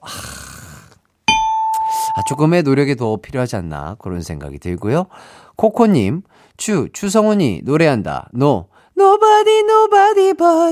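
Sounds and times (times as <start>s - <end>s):
bright electronic quiz-show correct-answer chime: 1.3s - 2.6s
speech: 2.2s - 10.6s.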